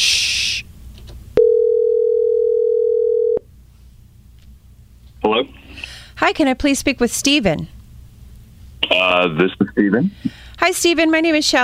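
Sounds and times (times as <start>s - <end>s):
short burst of hiss: 0.0s - 0.7s
steady single-pitched telephone tone while dialing a call: 1.4s - 3.4s
speech: 6.2s - 7.8s, 9.0s - 11.6s.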